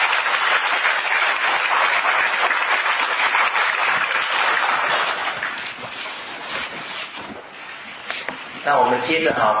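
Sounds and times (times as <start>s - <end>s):
audience applauding a teacher: 0.0s - 6.0s
speech: 8.7s - 9.5s.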